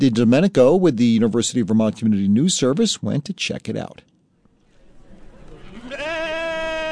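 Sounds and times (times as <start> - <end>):
speech: 0.0 - 4.1
murmur: 4.5 - 6.9
sheep bleating: 5.7 - 6.9.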